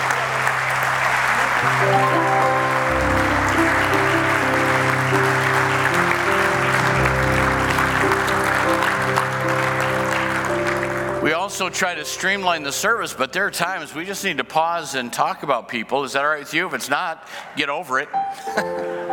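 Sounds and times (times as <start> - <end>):
large audience applauding at a service: 0.0 - 12.6
sustained musical chords: 1.5 - 13.4
speech: 11.6 - 19.1.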